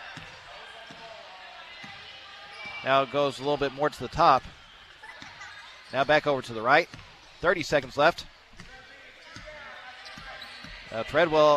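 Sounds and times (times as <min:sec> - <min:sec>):
basketball dribbled on the court near half-court: 0:00.0 - 0:01.1, 0:06.8 - 0:07.2, 0:08.5 - 0:11.0
steady noise: 0:00.0 - 0:11.5
speech: 0:02.8 - 0:04.6, 0:05.9 - 0:08.3, 0:10.9 - 0:11.5.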